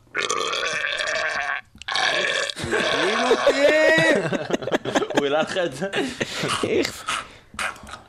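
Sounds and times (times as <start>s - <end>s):
deep drawn-out burping: 0.1s - 4.2s, 6.4s - 8.0s
laughter: 2.6s - 7.0s
speech: 3.4s - 4.6s, 5.2s - 7.1s.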